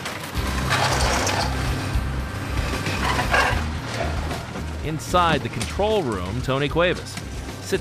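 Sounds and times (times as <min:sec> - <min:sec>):
large shredder ripping through scrap metal from flattened car: 0:00.0 - 0:01.9, 0:02.6 - 0:06.4
heavy industrial machinery grinding and roaring: 0:00.0 - 0:07.7
speech: 0:04.9 - 0:07.7.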